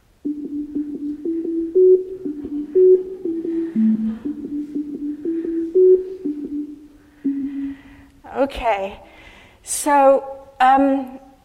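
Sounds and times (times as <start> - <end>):
simple tune of pure electronic tones within one octave: 0.2 - 8.0
speech: 8.5 - 11.2.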